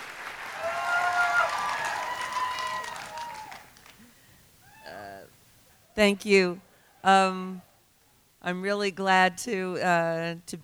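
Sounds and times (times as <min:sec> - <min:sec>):
large crowd applauding in a standing ovation: 0:00.0 - 0:04.3
speech: 0:06.0 - 0:07.7, 0:08.4 - 0:10.6.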